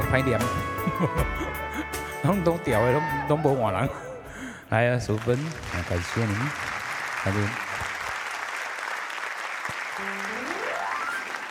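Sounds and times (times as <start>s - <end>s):
speech: 0.1s - 1.6s, 2.2s - 4.1s, 4.7s - 7.6s
audience applause: 5.1s - 11.4s
brief tonal rising sound: 10.0s - 11.4s.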